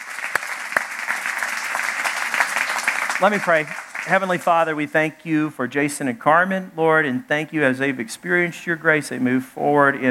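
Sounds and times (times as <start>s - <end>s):
audience clapping: 0.0s - 4.8s
speech: 3.2s - 10.1s.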